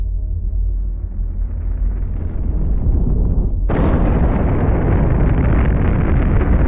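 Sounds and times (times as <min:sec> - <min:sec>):
deep rumble: 0:00.0 - 0:06.6
loud roaring Big Bang explosion sound effect: 0:01.4 - 0:06.6.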